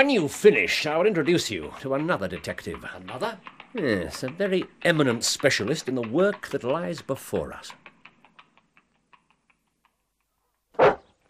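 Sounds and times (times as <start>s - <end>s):
speech: 0.0s - 7.8s
draghound giving a short gruff bark: 10.8s - 11.1s.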